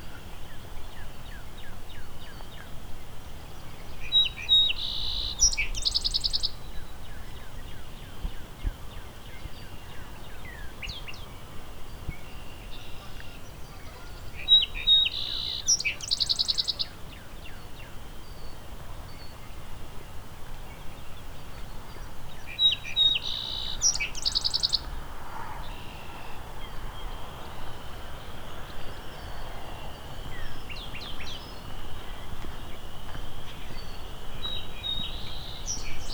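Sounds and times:
faint outdoor background: 0.0s - 36.1s
song sparrow singing: 14.4s - 17.6s, 22.4s - 24.9s, 28.2s - 36.1s.

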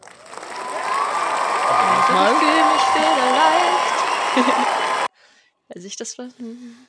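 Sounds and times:
crowd applauding after a sung song: 0.0s - 5.1s
people cheering: 0.0s - 5.1s
speech: 1.7s - 3.7s, 4.4s - 4.8s, 5.7s - 6.8s
laughter: 1.7s - 5.1s.

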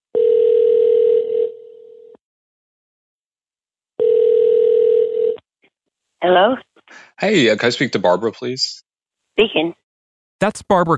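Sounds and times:
telephone ringback tone: 0.1s - 2.2s, 4.0s - 5.4s
speech: 6.2s - 8.8s, 9.4s - 9.8s, 10.4s - 10.9s.

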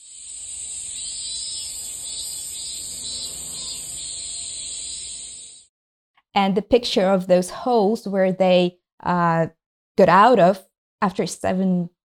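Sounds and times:
chorus of cicadas buzzing: 0.0s - 5.7s
speech: 6.4s - 12.1s.

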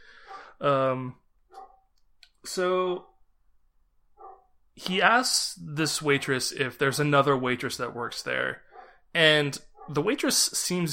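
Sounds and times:
dog barking: 0.2s - 0.6s, 1.5s - 1.9s, 4.2s - 4.5s, 7.8s - 9.0s, 9.8s - 10.1s
speech: 0.6s - 1.2s, 2.5s - 3.1s, 4.8s - 10.9s
dog yelping: 1.5s - 1.9s, 4.2s - 4.5s, 8.7s - 9.0s, 9.8s - 10.0s.

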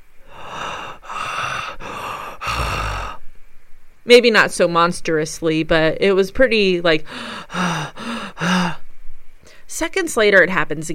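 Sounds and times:
man breathing heavily and forcefully: 0.2s - 3.2s, 7.0s - 8.8s
speech: 4.1s - 7.7s, 9.8s - 10.9s.

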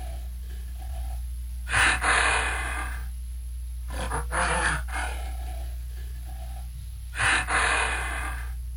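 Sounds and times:
lowland gorilla huffing grunts: 0.0s - 3.1s, 3.9s - 8.6s
low steady hum: 0.0s - 8.7s
lowland gorilla rumbling breaths: 0.0s - 8.7s.

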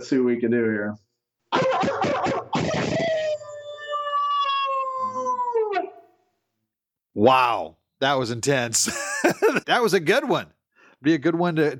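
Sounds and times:
speech: 0.0s - 2.9s, 7.2s - 11.7s
man imitating a wolf howl with rough breathy yips: 3.0s - 5.9s.

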